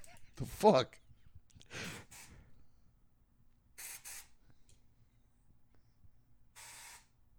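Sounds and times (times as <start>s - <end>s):
speech: 0.4s - 1.0s
aerosol blood-control spray can hissing: 2.0s - 2.3s, 3.8s - 4.4s, 6.6s - 7.1s.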